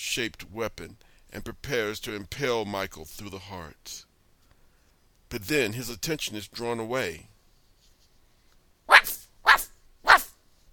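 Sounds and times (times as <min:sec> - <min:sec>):
speech: 0:00.2 - 0:04.1, 0:05.3 - 0:07.3
puppy barking: 0:08.9 - 0:10.4.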